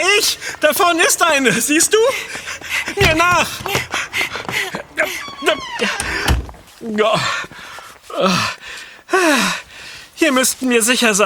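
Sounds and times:
speech: 0:00.2 - 0:07.6, 0:08.2 - 0:09.6, 0:10.2 - 0:11.2
door opening and thudding shut in a dark place: 0:03.0 - 0:06.6.

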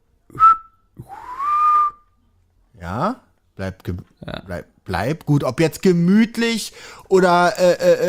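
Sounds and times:
person whistling bird-like notes: 0:00.4 - 0:02.1
speech: 0:02.9 - 0:08.0.

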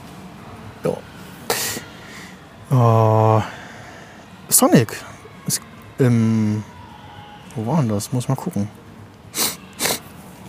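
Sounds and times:
speech: 0:00.8 - 0:01.1, 0:02.7 - 0:03.0, 0:04.6 - 0:06.7, 0:07.6 - 0:08.8
airy sniffs from a video game: 0:09.4 - 0:10.0.

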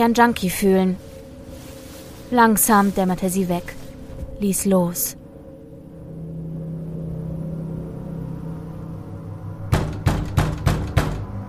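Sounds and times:
speech: 0:00.0 - 0:01.1, 0:02.3 - 0:03.8, 0:04.4 - 0:05.2
low steady rumbling hum: 0:00.0 - 0:11.4
heavy pounding on an apartment door: 0:09.7 - 0:11.4.

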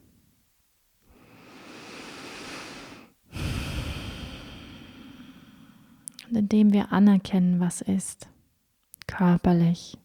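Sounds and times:
slow breathing during a guided meditation: 0:01.1 - 0:06.0
speech: 0:06.3 - 0:08.3, 0:09.2 - 0:10.0.

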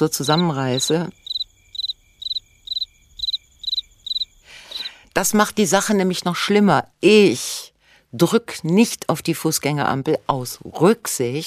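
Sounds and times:
speech: 0:00.0 - 0:01.2, 0:05.2 - 0:11.4
cricket chirping: 0:00.0 - 0:05.0.

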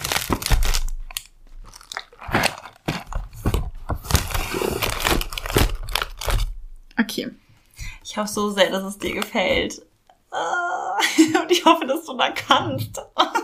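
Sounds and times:
plastic bag crinkling as something is tucked back in: 0:00.0 - 0:06.6
speech: 0:07.2 - 0:07.4, 0:08.2 - 0:10.6, 0:11.2 - 0:13.2.

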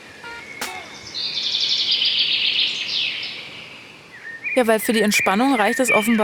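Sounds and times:
birds chirping and twittering in the open air: 0:00.0 - 0:06.2
sharp click: 0:00.6 - 0:01.1
speech: 0:04.6 - 0:06.2.

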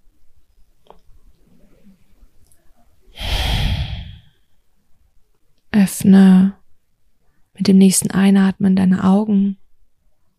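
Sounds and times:
deliberate exhale during a guided breathing exercise: 0:03.2 - 0:04.3
speech: 0:05.8 - 0:06.6, 0:07.6 - 0:09.6.

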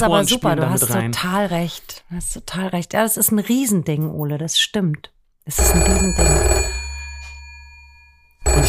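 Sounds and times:
speech: 0:00.0 - 0:06.8
large red rotary-dial telephone ringing with an electronic tone: 0:05.6 - 0:08.6.

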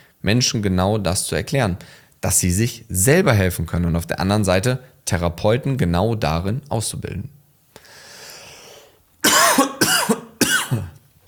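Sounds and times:
hiss: 0:00.0 - 0:11.2
speech: 0:00.2 - 0:07.4
loud harsh coughs: 0:09.2 - 0:11.0.

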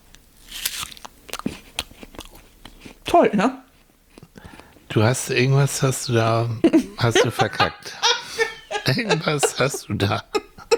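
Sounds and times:
biting into a crunchy apple: 0:00.4 - 0:03.0
speech: 0:03.1 - 0:03.6, 0:05.0 - 0:08.1, 0:08.8 - 0:10.4
laughter: 0:05.7 - 0:10.7.

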